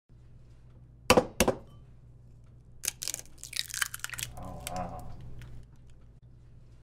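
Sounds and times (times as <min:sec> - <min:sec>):
egg breaking: 0:02.8 - 0:06.0.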